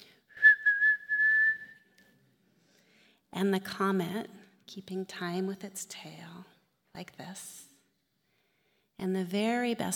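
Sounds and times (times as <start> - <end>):
woman whistling a high thin note imitating the moon whistling: 0.3 - 2.0
speech: 3.3 - 7.7, 9.0 - 9.9.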